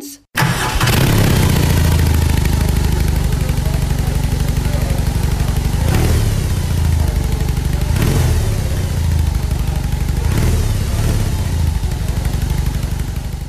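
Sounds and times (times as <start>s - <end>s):
large-engine R18 motorcycle engine running: 0.5s - 13.4s.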